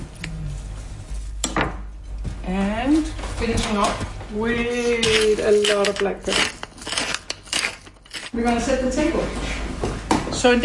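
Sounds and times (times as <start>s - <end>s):
low steady hum: 0.0s - 10.6s
speech: 2.5s - 6.6s, 8.3s - 9.6s, 10.4s - 10.6s
knife cutting off the crust during food preparation: 5.0s - 8.4s.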